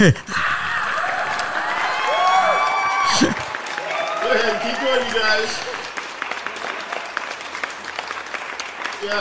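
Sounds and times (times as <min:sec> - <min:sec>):
speech: 0:00.0 - 0:00.5, 0:04.4 - 0:05.7, 0:09.0 - 0:09.2
crowd cheering and whooping: 0:00.3 - 0:07.4
crowd applause: 0:00.6 - 0:09.2.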